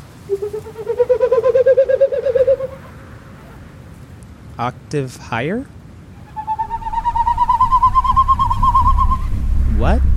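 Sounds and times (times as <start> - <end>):
bird calling with a warbling tone: 0.0 - 3.6, 6.1 - 9.4
speech: 0.3 - 1.3, 4.6 - 5.8, 9.8 - 10.0.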